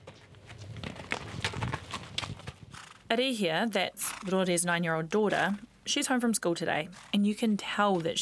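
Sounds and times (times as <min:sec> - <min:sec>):
horse hooves clip-clopping: 0:00.0 - 0:03.1, 0:03.8 - 0:04.6, 0:06.9 - 0:08.1
speech: 0:03.1 - 0:08.1.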